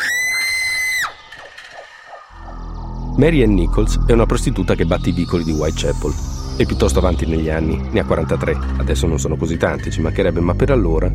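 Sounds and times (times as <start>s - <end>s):
loud piercing scream in a dark alley: 0.0s - 1.2s
low rumble: 2.3s - 11.1s
speech: 3.2s - 11.1s.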